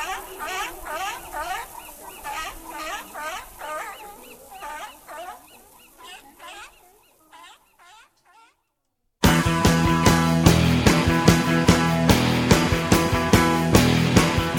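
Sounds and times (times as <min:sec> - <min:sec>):
seals barking and calling with hoarse cries: 0:00.0 - 0:08.6
loud music: 0:09.2 - 0:14.5.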